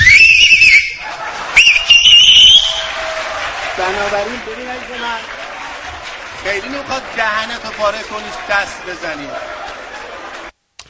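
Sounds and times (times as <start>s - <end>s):
man whistling with fingers in mouth: 0.0s - 1.0s, 1.6s - 2.9s
faint crowd noise: 0.0s - 10.6s
laughter: 0.8s - 2.2s, 3.4s - 10.5s
speech: 3.9s - 5.4s, 6.4s - 9.7s.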